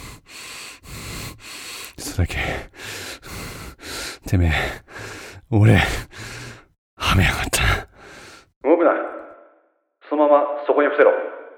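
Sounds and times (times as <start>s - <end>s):
heavy ragged breathing of a wounded man with a bleeding arm: 0.0s - 8.6s
speech: 2.0s - 2.8s, 4.3s - 4.9s, 5.5s - 6.1s, 10.3s - 11.4s.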